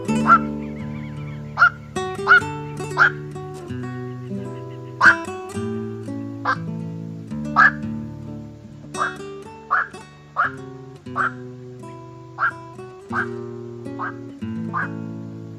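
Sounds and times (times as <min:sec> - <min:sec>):
black-crowned night heron harsh croaking quok calls: 0:00.1 - 0:05.4, 0:07.6 - 0:07.8, 0:09.0 - 0:11.5, 0:12.3 - 0:15.0.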